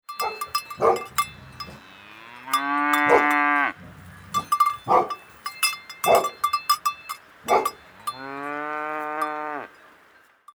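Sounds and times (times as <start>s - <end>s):
dog barking: 0.2s - 1.8s, 3.0s - 5.4s, 6.0s - 6.6s, 7.4s - 8.1s
cow mooing: 0.2s - 10.3s.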